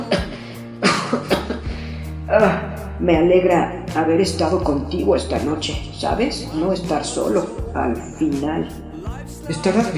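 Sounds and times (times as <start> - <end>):
boy coughing harshly: 0.0 - 1.7
boy's rough breathing: 0.2 - 0.8, 1.6 - 2.3
speech: 2.3 - 8.8, 9.4 - 9.9.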